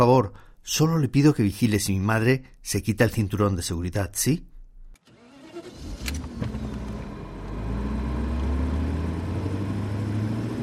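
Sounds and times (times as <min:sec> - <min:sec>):
speech: 0:00.0 - 0:04.5
car engine cranking and catching: 0:05.0 - 0:10.6.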